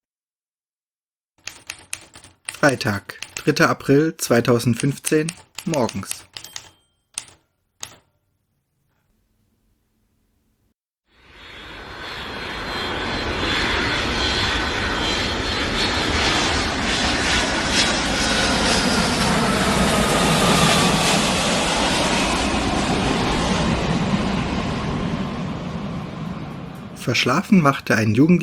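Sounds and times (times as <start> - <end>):
sharp clicks: 1.4 - 8.1
speech: 2.6 - 6.3, 27.1 - 28.4
airplane engine roar after landing: 11.2 - 28.4.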